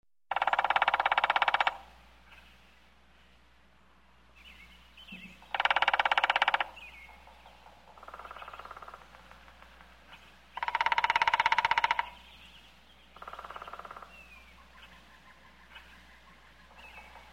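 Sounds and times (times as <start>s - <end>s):
woodpecker drumming in a forest: 0.3s - 2.0s, 5.1s - 12.4s, 13.1s - 17.3s
faint bird calls: 0.3s - 3.4s, 4.4s - 17.3s.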